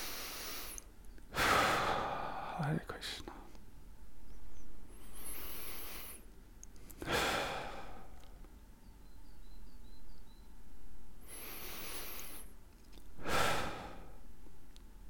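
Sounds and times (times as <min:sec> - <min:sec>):
slow deep breaths taken to relax: 0:00.0 - 0:03.6, 0:04.8 - 0:08.5, 0:10.9 - 0:14.6
speech: 0:02.6 - 0:03.4.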